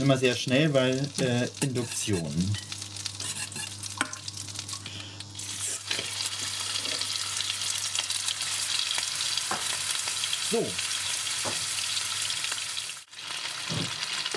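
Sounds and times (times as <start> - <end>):
speech: 0.0 - 2.7, 10.5 - 11.6
meat searing in hot butter and oil: 0.0 - 14.3
utensil clinking while stirring in the pan: 1.6 - 4.2.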